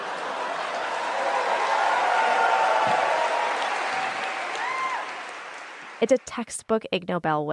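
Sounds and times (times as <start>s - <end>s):
large audience laughing at an award ceremony: 0.0s - 2.8s
audience clapping at an award ceremony: 0.0s - 6.5s
speech: 6.0s - 7.5s.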